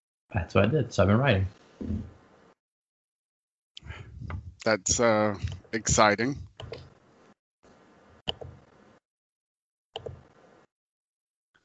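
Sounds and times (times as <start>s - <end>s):
speech: 0.3s - 2.2s, 4.2s - 6.8s
computer mouse clicks: 10.0s - 10.2s.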